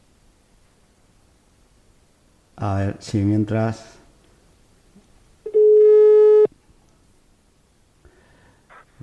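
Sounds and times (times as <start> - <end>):
speech: 2.6 - 4.0
steady telephone call tone while redialing: 5.5 - 6.5.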